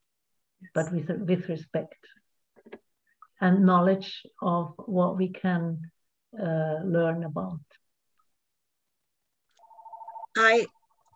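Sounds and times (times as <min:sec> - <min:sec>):
speech: 0:00.7 - 0:02.8, 0:03.4 - 0:07.8, 0:10.4 - 0:10.8
phone ringing with a warbling electronic tone: 0:09.6 - 0:11.0.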